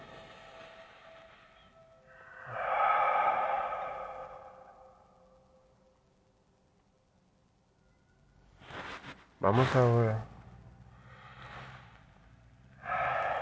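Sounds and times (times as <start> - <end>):
slow deep breathing during a guided relaxation exercise: 0.0 - 5.9, 10.6 - 13.4
speech: 9.4 - 10.3.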